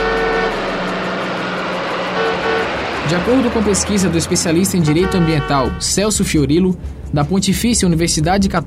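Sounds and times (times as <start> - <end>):
car horns honking in dense street traffic: 0.0 - 6.2
constant roar of street traffic engines: 0.0 - 7.1
speech: 3.1 - 8.6.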